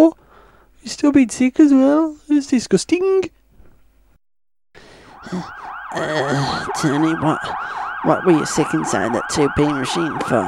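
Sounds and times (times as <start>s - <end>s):
speech: 0.8s - 3.4s, 5.2s - 10.4s
ambulance siren wailing: 5.0s - 10.4s.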